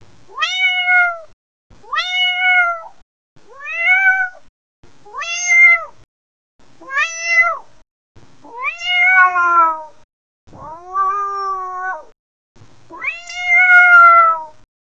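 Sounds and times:
happy cat meowing: 0:00.3 - 0:01.3, 0:01.9 - 0:02.9, 0:03.5 - 0:04.4, 0:05.1 - 0:06.0, 0:06.8 - 0:07.7, 0:08.5 - 0:12.1, 0:12.9 - 0:14.6.

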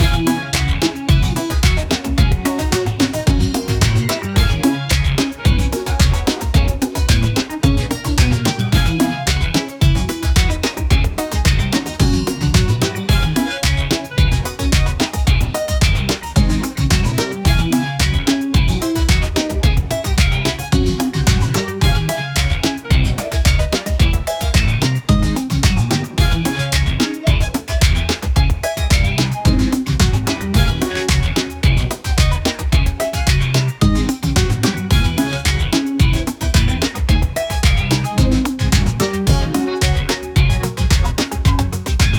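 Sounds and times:
bright upbeat funky beat: 0:00.0 - 0:42.1.

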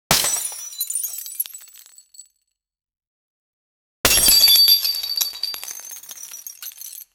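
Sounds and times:
glass breaking: 0:00.1 - 0:02.2, 0:04.1 - 0:07.1.

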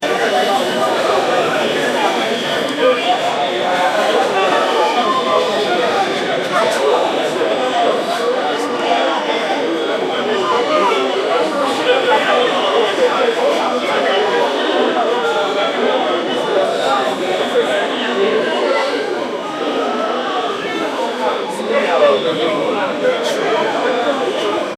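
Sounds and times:
crowd noise inside a hotel: 0:00.0 - 0:24.7.

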